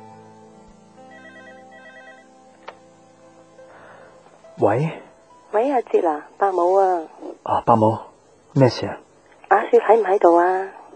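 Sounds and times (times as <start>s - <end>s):
soft steady hum: 0.0s - 10.9s
telephone with electronic ringtone ringing: 1.1s - 2.3s
speech: 4.6s - 5.0s, 5.7s - 10.8s.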